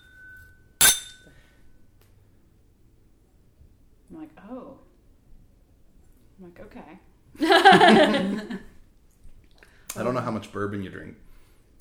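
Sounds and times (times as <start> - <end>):
glasses clinking in a toast: 0.0 - 1.5
speech: 4.1 - 4.9, 6.4 - 8.7, 10.0 - 11.3
laughter: 7.4 - 8.7.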